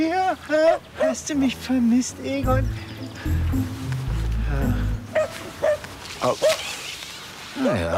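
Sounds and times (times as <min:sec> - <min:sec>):
speech: 0:00.0 - 0:03.8, 0:06.2 - 0:06.7, 0:07.6 - 0:07.9
dog barking: 0:00.7 - 0:01.2, 0:05.1 - 0:06.6.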